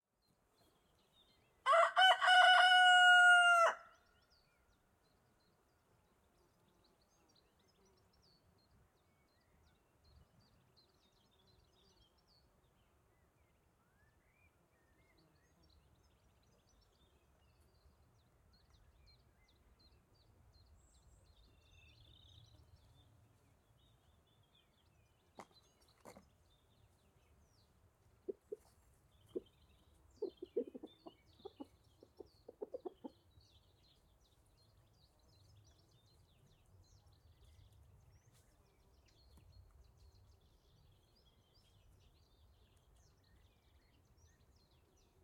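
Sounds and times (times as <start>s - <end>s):
birds in the countryside by day: 0.2s - 45.2s
rooster in the countryside by day: 1.6s - 4.0s.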